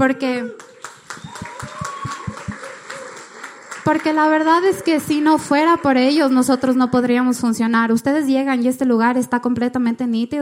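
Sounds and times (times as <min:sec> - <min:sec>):
speech: 0:00.0 - 0:01.4, 0:03.9 - 0:10.4
audience applauding in a reverberant room: 0:00.6 - 0:06.0.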